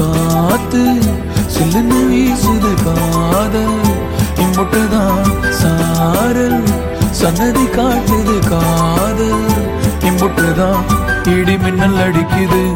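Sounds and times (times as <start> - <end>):
male version ringtone: 0.2 - 12.7.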